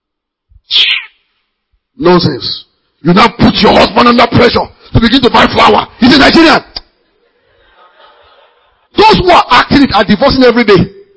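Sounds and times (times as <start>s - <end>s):
cat meowing: 0.7s - 1.2s
speech: 2.0s - 6.8s, 9.0s - 11.0s
laughter: 7.2s - 8.9s.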